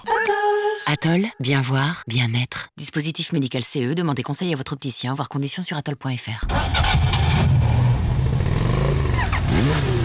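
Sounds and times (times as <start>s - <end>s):
speech: 0.9s - 7.6s
motor engine starting and revving: 6.4s - 10.0s.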